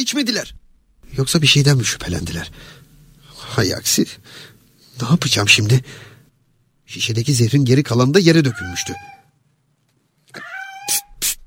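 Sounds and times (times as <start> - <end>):
speech: 0.0 - 2.8, 3.5 - 6.1, 6.9 - 9.2
noisy bursts: 0.3 - 8.4
cat meowing: 8.4 - 9.4, 10.3 - 11.2.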